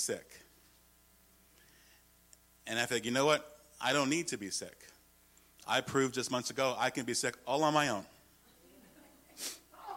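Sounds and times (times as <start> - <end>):
speech: 0.0 - 0.4, 2.7 - 5.0, 5.6 - 8.2, 9.4 - 9.6
person sneezing: 9.4 - 9.9.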